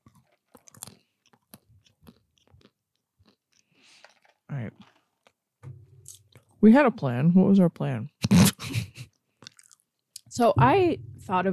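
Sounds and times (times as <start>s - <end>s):
crispy snack being chewed: 0.0s - 5.4s, 9.1s - 10.0s
speech: 6.6s - 8.1s, 10.4s - 11.5s.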